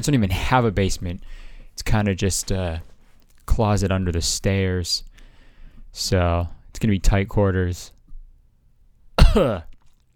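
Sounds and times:
speech: 0:00.0 - 0:02.9, 0:03.5 - 0:05.1, 0:05.9 - 0:08.0, 0:09.3 - 0:09.7
person coughing: 0:09.2 - 0:09.8.

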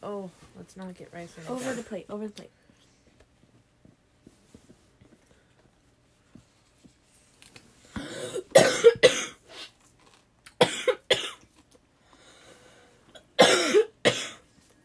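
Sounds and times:
speech: 0:00.3 - 0:02.7
person coughing harshly: 0:08.0 - 0:09.4, 0:10.6 - 0:11.4, 0:13.4 - 0:14.4.

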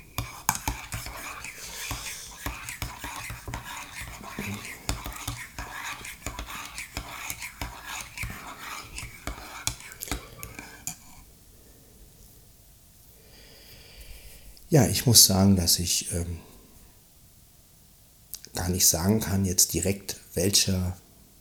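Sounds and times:
spoon stirring in a cup: 0:00.0 - 0:11.2
speech: 0:04.4 - 0:04.7, 0:14.7 - 0:16.5, 0:18.7 - 0:21.0.

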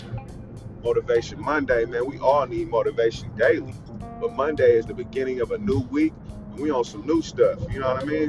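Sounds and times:
low engine and road rumble inside a moving car: 0:00.0 - 0:08.2
speech: 0:00.8 - 0:08.2.

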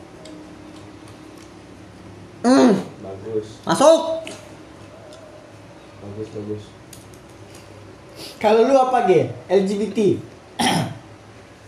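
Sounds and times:
speech: 0:02.4 - 0:04.4, 0:06.1 - 0:06.8, 0:08.4 - 0:10.3
short harsh cough: 0:10.6 - 0:11.0.

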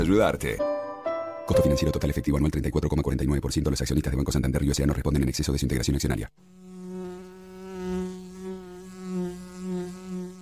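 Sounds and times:
speech: 0:00.0 - 0:00.7, 0:01.5 - 0:06.6
bee buzzing: 0:06.4 - 0:10.4.

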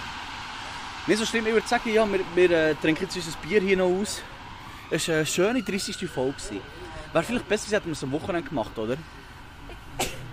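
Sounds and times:
speech: 0:01.0 - 0:09.2
person sneezing: 0:09.7 - 0:10.3.

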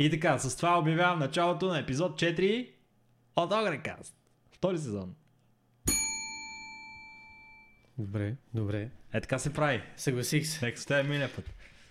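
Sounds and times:
speech: 0:00.0 - 0:02.8, 0:03.4 - 0:05.2, 0:08.0 - 0:11.7
bell ding: 0:05.9 - 0:07.8.

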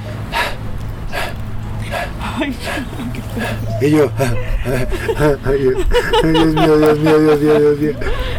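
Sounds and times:
low hum: 0:00.0 - 0:08.3
voice imitating heavy panting: 0:00.2 - 0:06.6
laughter: 0:01.2 - 0:08.3
speech: 0:02.4 - 0:08.3.

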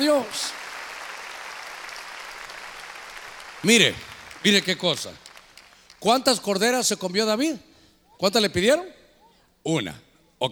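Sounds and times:
speech: 0:00.0 - 0:00.6, 0:03.6 - 0:05.2, 0:06.0 - 0:09.0, 0:09.6 - 0:10.4
crowd clapping together in loud applause: 0:00.0 - 0:06.4.

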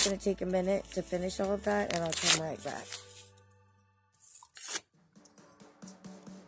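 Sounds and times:
speech: 0:00.0 - 0:03.1
paper rustling: 0:01.5 - 0:03.3
paper being ripped into small pieces for compost: 0:01.8 - 0:03.3, 0:04.2 - 0:04.8.

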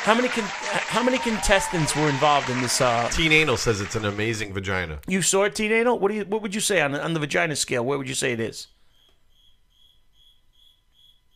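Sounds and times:
speech: 0:00.0 - 0:08.8
cricket chirping: 0:08.8 - 0:11.3.

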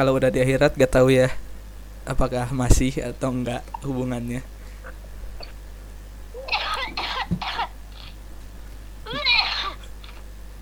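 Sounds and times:
speech: 0:00.0 - 0:01.4, 0:02.0 - 0:04.5
steady hum: 0:00.0 - 0:10.6
person coughing: 0:06.4 - 0:07.7.

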